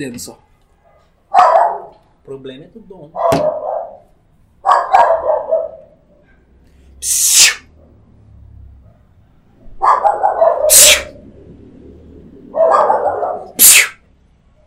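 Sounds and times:
speech: 0.0s - 0.5s, 2.3s - 3.6s, 7.0s - 7.4s
dogs barking: 0.4s - 2.1s, 3.1s - 6.6s, 8.8s - 11.2s, 12.4s - 14.6s.

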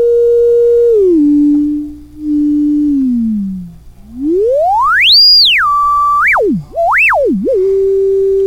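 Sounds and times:
faint low hum: 0.0s - 8.4s
self-oscillating diode ladder filter whistling tone: 0.0s - 8.4s.

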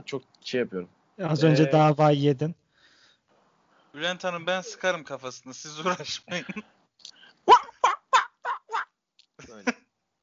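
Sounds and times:
speech: 0.1s - 2.6s, 3.9s - 6.8s
person vocally imitating a seal with seagull-like squawks: 7.5s - 8.9s
laughter: 9.4s - 9.8s.

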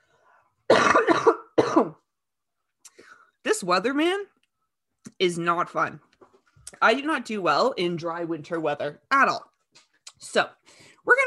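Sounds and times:
person coughing: 0.7s - 2.0s
speech: 1.8s - 2.0s, 3.4s - 4.3s, 5.2s - 6.1s, 6.7s - 9.5s, 10.2s - 11.2s.

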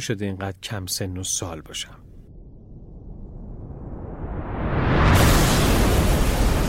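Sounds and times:
speech: 0.0s - 2.1s
bomb explosion: 2.2s - 6.6s.

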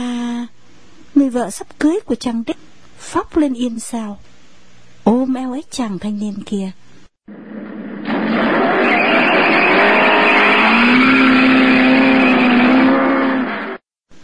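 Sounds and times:
speech: 1.3s - 4.4s, 5.0s - 6.8s
motorbike engine revving and roaring as it accelerates: 7.3s - 13.8s.

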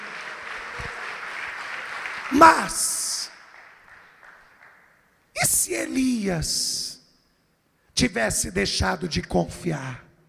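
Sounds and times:
congregation applauding at a church service: 0.0s - 5.1s
speech: 2.3s - 2.9s, 5.7s - 6.8s, 8.0s - 10.1s.

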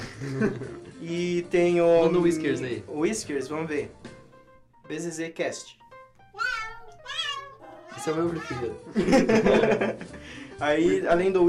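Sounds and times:
laughter: 0.0s - 0.8s, 8.9s - 10.3s
speech: 0.2s - 4.1s, 4.9s - 5.8s, 8.0s - 11.4s
cat meows from a pet translator app: 6.4s - 8.7s.

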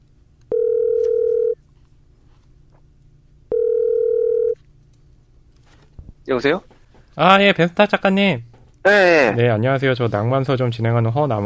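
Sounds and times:
telephone line beeps while calling a guest: 0.5s - 1.6s, 3.5s - 4.6s
speech: 6.3s - 11.4s.

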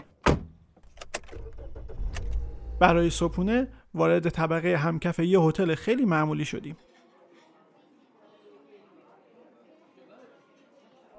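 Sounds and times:
car door shutting: 0.2s - 2.8s
car engine rumble as the car pulls away: 0.8s - 3.9s
speech: 2.8s - 6.9s.

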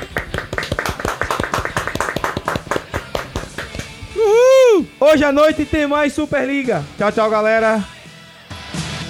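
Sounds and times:
round of applause from a small group: 0.0s - 4.0s
speech: 5.0s - 7.9s.

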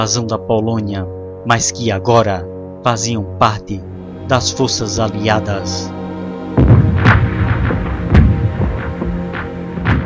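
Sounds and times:
speech: 0.0s - 6.0s
continuous low rumble of artillery bombardment: 3.9s - 10.0s
massive artillery bombardment booms: 6.6s - 9.1s.

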